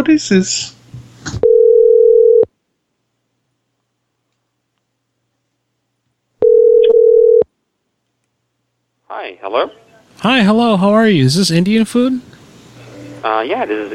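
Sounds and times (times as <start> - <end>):
speech: 0.0 - 1.4, 9.1 - 12.3, 13.2 - 13.9
telephone dial tone: 1.4 - 2.5, 6.4 - 7.5.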